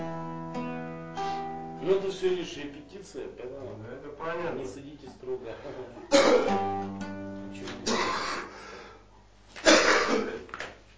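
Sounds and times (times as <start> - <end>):
faint steady hum: 0.0 - 10.9
speech: 1.8 - 8.5
ill person coughing: 6.0 - 6.6, 7.8 - 8.5, 9.6 - 10.5.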